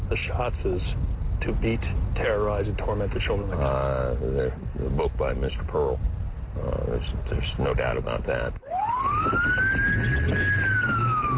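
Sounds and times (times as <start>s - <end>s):
low rumble of a moving vehicle engine: 0.0s - 11.3s
speech: 0.1s - 10.6s
police car siren wailing: 8.6s - 11.3s.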